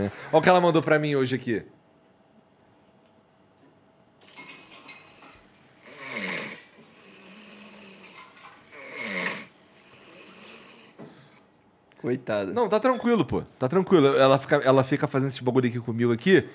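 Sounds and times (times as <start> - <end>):
speech: 0.0 - 1.8, 12.0 - 16.5
person snoring loudly and raspily: 5.8 - 11.0.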